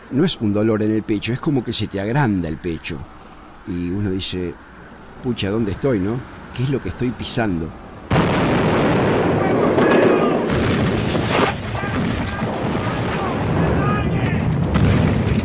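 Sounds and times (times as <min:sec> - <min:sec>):
speech: 0:00.1 - 0:07.8
falling bombs exploding in heavy booms: 0:08.1 - 0:15.4.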